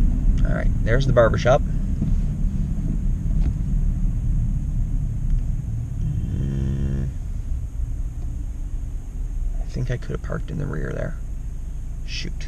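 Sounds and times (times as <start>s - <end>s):
car driving around the block with engine and road rumble: 0.0s - 12.4s
speech: 0.5s - 1.8s, 9.9s - 11.2s, 12.1s - 12.4s
humming tone: 1.9s - 9.6s.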